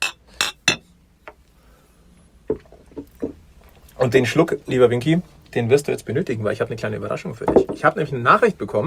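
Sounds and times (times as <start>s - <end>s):
glasses clinking together in a toast: 0.0s - 0.9s
speech: 2.5s - 3.3s, 4.0s - 8.8s.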